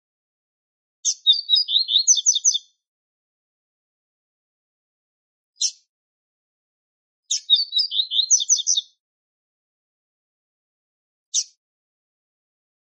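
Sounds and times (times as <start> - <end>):
male double-collared seedeater song of high twittering chirps: 1.0 - 2.7, 5.6 - 5.8, 7.3 - 9.0.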